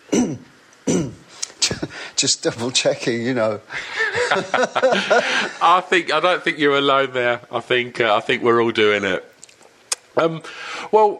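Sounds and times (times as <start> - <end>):
smoker clearing throat with cough-like rasp: 0.0 - 2.0
speech: 2.2 - 9.3, 10.2 - 11.1
laughter: 3.7 - 5.8.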